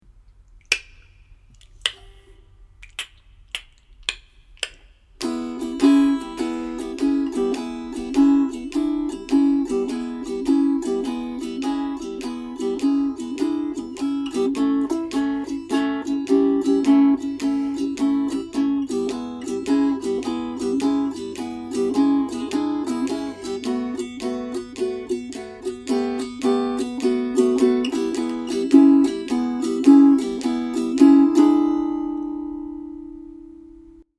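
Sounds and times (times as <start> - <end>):
blues swing music in E: 5.2 - 31.9.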